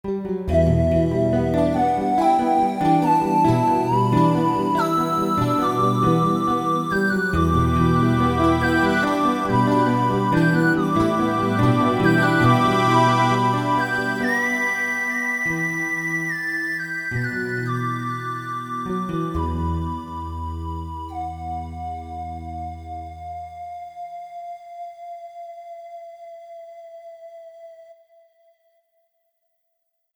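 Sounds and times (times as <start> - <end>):
guitar arpeggio: 0.1 - 23.2.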